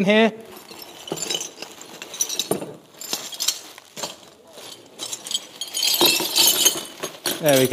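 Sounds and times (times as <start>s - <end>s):
ceramic shards rattling: 0.4s - 7.7s.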